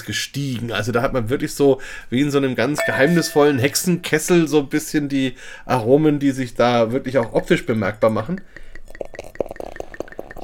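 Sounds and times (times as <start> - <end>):
speech: 0.0 - 9.4
faint glass clinks: 2.8 - 4.1
beer glugging from a bottle into a glass: 8.8 - 10.4.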